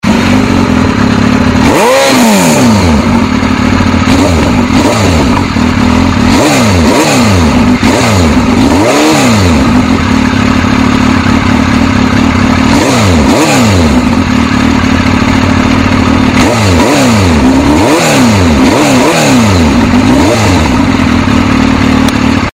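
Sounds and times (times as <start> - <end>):
motorcycle engine roar: 0.0 - 22.5.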